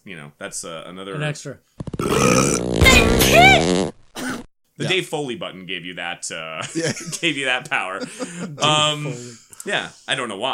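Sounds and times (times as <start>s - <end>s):
speech: 0.0s - 10.5s
voice imitating a combined sneeze, fart, cough and burp: 1.8s - 4.5s.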